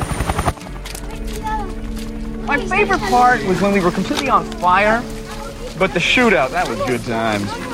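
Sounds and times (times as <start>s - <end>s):
helicopter rotor: 0.0s - 1.1s
speech: 2.5s - 5.2s, 5.8s - 7.7s.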